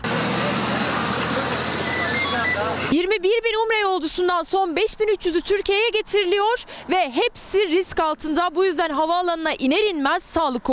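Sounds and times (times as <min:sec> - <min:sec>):
roadway hiss: 0:00.0 - 0:03.0
articulated airport buses driving past: 0:00.0 - 0:04.8
speech: 0:02.9 - 0:10.7.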